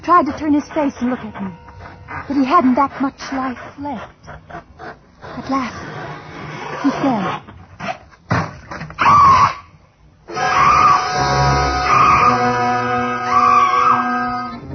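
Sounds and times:
speech: 0:00.0 - 0:01.6, 0:02.2 - 0:04.7, 0:05.4 - 0:05.9, 0:06.8 - 0:07.5
woman screaming: 0:10.3 - 0:14.6.

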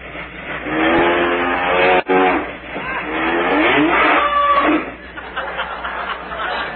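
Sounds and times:
milk train passing by: 0:00.0 - 0:06.7
train whistle: 0:00.6 - 0:05.0
laughter: 0:02.8 - 0:03.2, 0:04.9 - 0:06.7.

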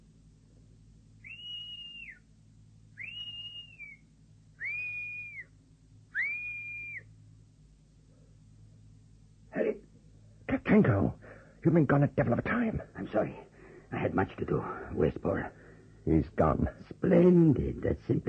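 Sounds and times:
low rumble: 0:00.0 - 0:18.2
whistle blasts given as a signal: 0:01.2 - 0:02.3, 0:03.0 - 0:05.5, 0:06.1 - 0:07.1
speech: 0:10.8 - 0:18.2.

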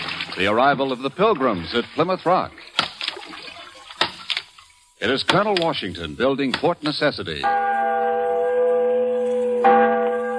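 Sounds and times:
speech: 0:00.4 - 0:02.6, 0:05.0 - 0:07.8
large bell ringing with a deep sustained tone: 0:07.4 - 0:10.3.

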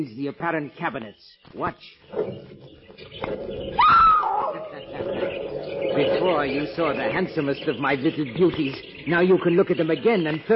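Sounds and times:
speech: 0:00.0 - 0:10.5
caged animals squealing: 0:02.1 - 0:09.4.

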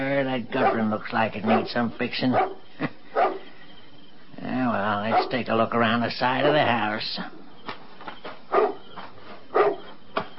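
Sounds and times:
speech: 0:00.2 - 0:03.4, 0:04.7 - 0:07.4
dog barking outdoors in the dark: 0:00.6 - 0:03.5, 0:05.1 - 0:05.4, 0:06.4 - 0:06.8, 0:08.5 - 0:08.8, 0:09.5 - 0:09.9.

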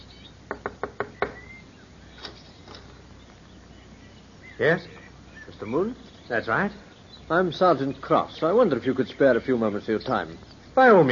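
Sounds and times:
faint chirping: 0:00.0 - 0:11.1
firm knocks on a wooden front door: 0:00.5 - 0:01.4
speech: 0:04.6 - 0:05.0, 0:05.6 - 0:11.1.

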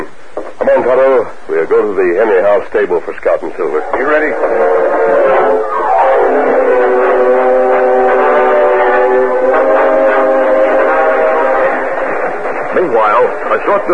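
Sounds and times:
speech: 0:00.6 - 0:07.0, 0:12.8 - 0:13.9
fast-moving steam locomotive roaring: 0:03.7 - 0:13.9
steam train horn blowing: 0:03.9 - 0:13.4.

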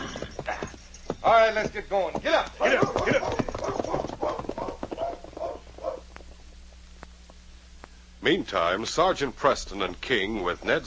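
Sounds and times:
horses' hooves clip-clopping on a trail: 0:00.0 - 0:06.4
speech: 0:01.2 - 0:03.5, 0:08.3 - 0:10.8.

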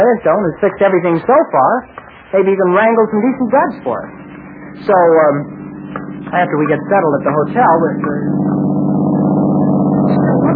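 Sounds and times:
speech: 0:00.0 - 0:05.6, 0:06.2 - 0:08.7
car engine driving past: 0:03.7 - 0:10.5.

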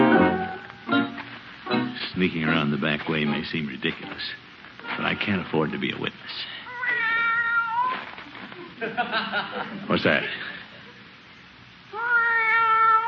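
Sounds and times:
speech: 0:02.0 - 0:06.6, 0:08.8 - 0:10.5
cat meowing in drawn-out wavering cries: 0:06.6 - 0:08.1, 0:11.9 - 0:13.0
laughter: 0:08.3 - 0:11.1.

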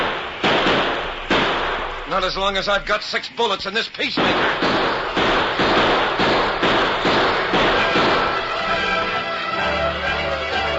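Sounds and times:
explosion blasts blasting open a door during a holdup: 0:00.0 - 0:02.6, 0:04.2 - 0:09.2
steady hiss: 0:00.0 - 0:10.7
speech: 0:02.1 - 0:05.0.

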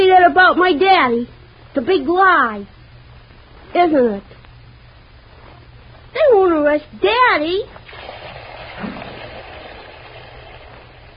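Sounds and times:
speech: 0:00.3 - 0:02.8, 0:03.7 - 0:04.4, 0:06.2 - 0:08.0
tap water running at full force: 0:07.8 - 0:11.1.

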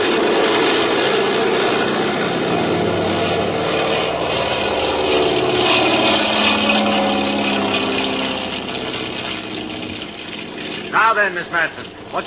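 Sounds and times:
small plane engine and propeller droning during takeoff: 0:00.0 - 0:12.2
speech: 0:11.2 - 0:12.2.

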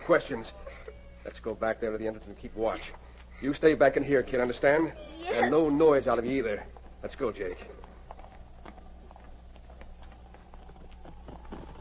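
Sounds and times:
low hum: 0:00.0 - 0:11.8
speech: 0:00.1 - 0:07.8
horses' hooves clopping on a trail: 0:06.1 - 0:11.8.

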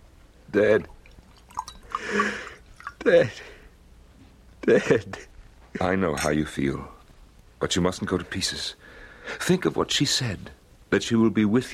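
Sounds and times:
speech: 0:00.5 - 0:01.0, 0:03.0 - 0:03.5, 0:04.7 - 0:07.0, 0:07.6 - 0:11.7
brandy being poured into a glass: 0:00.9 - 0:03.0.

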